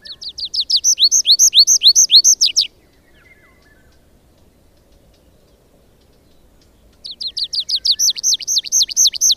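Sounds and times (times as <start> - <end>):
tree pipit singing repeated high arching notes: 0.0 - 3.9, 7.1 - 9.3.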